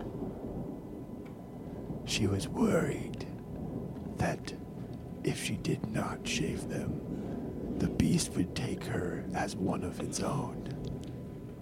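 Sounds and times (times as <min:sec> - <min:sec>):
deep storm thunder rumbling: 0:00.0 - 0:11.6
faint hiss of rain: 0:00.0 - 0:11.6
speech: 0:02.1 - 0:03.3, 0:04.2 - 0:10.8.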